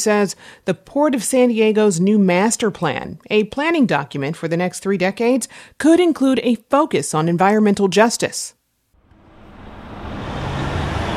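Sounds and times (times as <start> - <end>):
speech: 0.0 - 8.6
heavy vehicle engine rumbling past on a street: 9.0 - 11.1
neighborhood street traffic noise: 9.0 - 11.1.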